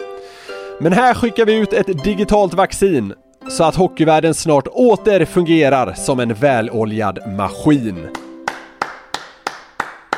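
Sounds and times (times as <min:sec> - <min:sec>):
speech: 0:00.8 - 0:08.2
hand claps: 0:08.1 - 0:10.1.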